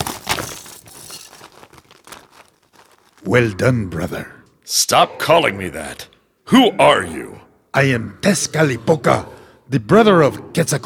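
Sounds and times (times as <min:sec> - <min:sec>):
crackling, tinkling icy fragments clattering and crunching: 0:00.0 - 0:03.0
frozen creature shattering into icy pieces: 0:00.0 - 0:03.2
speech: 0:03.2 - 0:10.8.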